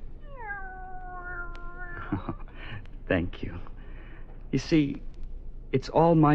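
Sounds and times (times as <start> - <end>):
low hum: 0.0 - 6.3
cat meowing: 0.2 - 2.4
speech: 2.1 - 3.7, 4.5 - 5.1, 5.7 - 6.3.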